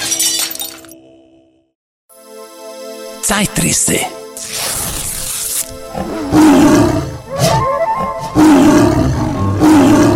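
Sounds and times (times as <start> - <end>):
speech: 3.3 - 4.7
tiger roaring: 5.9 - 7.4, 8.3 - 10.1.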